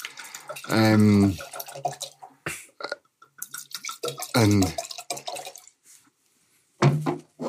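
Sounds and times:
Monsirol Grand Cru wine from Romandie pouring into glasses: 0.0 - 2.4, 3.2 - 5.8
speech: 0.5 - 2.0, 4.4 - 4.8.

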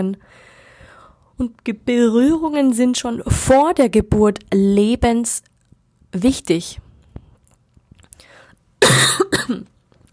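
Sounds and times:
speech: 0.0 - 0.5, 1.4 - 5.5, 6.1 - 6.8, 8.8 - 9.7
person coughing: 8.8 - 9.7.

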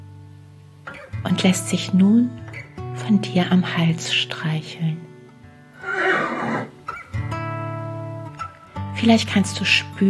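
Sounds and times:
speech: 1.2 - 2.4, 3.0 - 5.1, 9.0 - 10.0
horse huffing: 5.8 - 6.8
horse whinnying: 5.8 - 7.0.

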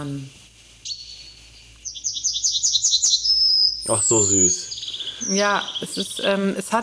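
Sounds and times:
speech: 0.0 - 0.4, 3.8 - 6.8
quiet low hum: 0.0 - 6.8
yellowhammer song played as a recording: 0.9 - 6.8.

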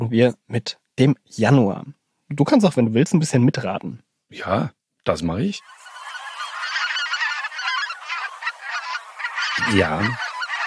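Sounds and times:
speech: 0.0 - 5.8, 9.6 - 10.3
flock of geese honking: 5.6 - 10.6.

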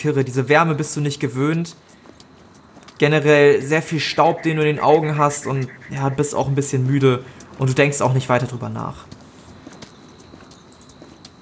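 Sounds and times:
speech: 0.0 - 2.0, 3.0 - 9.2
steady hiss: 0.0 - 10.2
horses' hooves clip-clopping through hot, dusty country: 0.6 - 3.8, 7.4 - 11.3.

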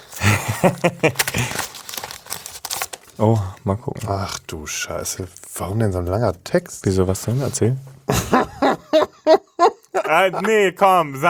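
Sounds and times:
paper envelope being torn open: 0.0 - 3.3
laughter: 0.2 - 1.7, 8.1 - 10.9
speech: 0.6 - 1.7, 3.2 - 9.4, 10.1 - 11.2.

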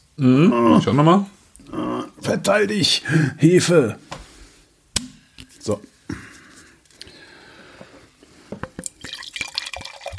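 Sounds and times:
speech: 0.2 - 4.2, 5.6 - 5.9
drink poured into a glass: 8.9 - 10.1.

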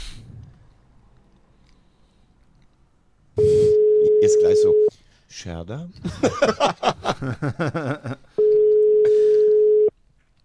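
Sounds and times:
electronic telephone ringback tone: 3.4 - 4.9, 8.4 - 9.9
speech: 4.2 - 8.3
laughter: 6.0 - 8.3.

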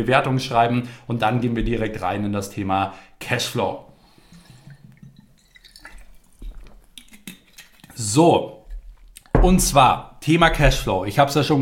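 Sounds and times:
speech: 0.0 - 3.9, 8.0 - 8.6, 9.4 - 11.6
person sipping water: 4.0 - 9.3
swallowing clicks: 6.4 - 8.0.

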